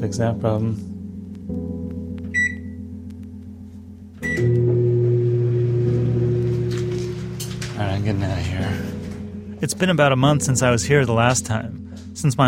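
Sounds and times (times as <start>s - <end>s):
speech: 0.0s - 0.9s, 9.6s - 12.4s
microwave oven short beep: 2.4s - 2.8s, 4.2s - 4.6s
microwave oven humming: 4.2s - 9.6s.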